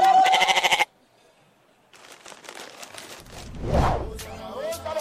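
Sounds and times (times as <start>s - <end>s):
goat bleating: 0.1s - 0.9s
rustling: 1.9s - 3.9s.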